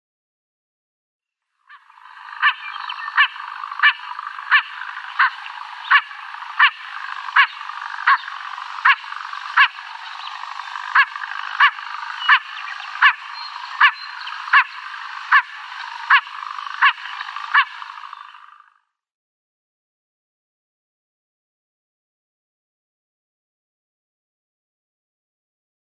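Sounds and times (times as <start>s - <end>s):
female Blue-winged Teal: 1.7s - 18.7s.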